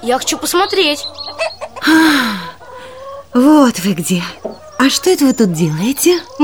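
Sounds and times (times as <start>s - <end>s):
speech: 0.0s - 2.4s, 3.3s - 6.4s
hen cackling after laying an egg in a village in summer: 1.4s - 6.4s.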